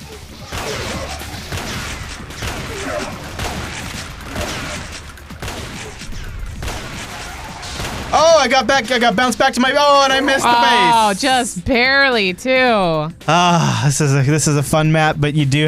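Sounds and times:
gunfire in a video game: 0.0 - 8.5
speech: 8.4 - 15.6.

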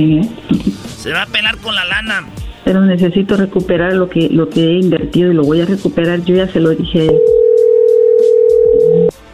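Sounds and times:
speech: 0.0 - 7.4
telephone dial tone while calling someone: 7.1 - 9.1.

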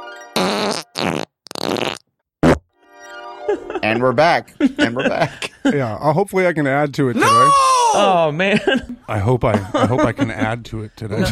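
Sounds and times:
recorded fart sounds played back: 0.4 - 2.7
laughter: 3.5 - 5.9, 7.2 - 11.3
speech: 3.9 - 11.3.

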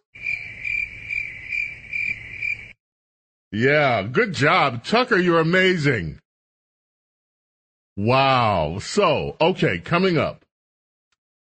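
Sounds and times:
crickets chirping: 0.1 - 2.8
speech: 3.5 - 6.2, 8.0 - 10.4.

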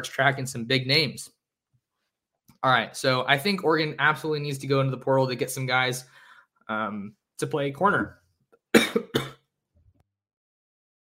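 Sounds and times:
speech: 0.0 - 1.4, 2.6 - 9.3
harsh coughs: 8.7 - 9.4.

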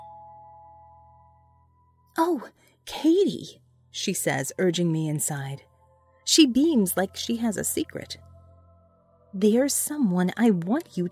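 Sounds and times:
house doorbell ding-dong chime: 0.0 - 0.7
speech: 2.2 - 5.7, 6.3 - 8.3, 9.3 - 11.0.

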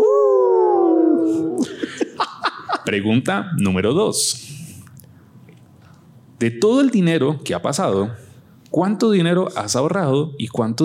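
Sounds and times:
people howling in imitation of wolves: 0.0 - 1.7
laughter: 1.6 - 3.0
speech: 2.9 - 4.6, 6.4 - 10.8.

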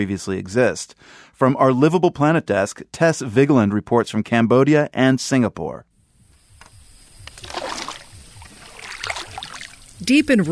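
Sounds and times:
speech: 0.0 - 5.9, 10.0 - 10.4
long-tailed boat wash swishing and splashing in calm estuary water: 7.4 - 10.4.

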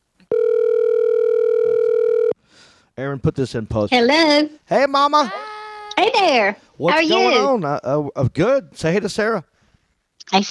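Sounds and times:
electronic telephone ringback tone on an outgoing call: 0.3 - 2.4
speech: 3.0 - 5.4, 6.0 - 9.5, 10.2 - 10.5.

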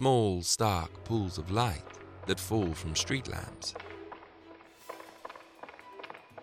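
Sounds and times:
speech: 0.0 - 3.8
quick footsteps hurrying on a hard street surface: 1.4 - 6.4.

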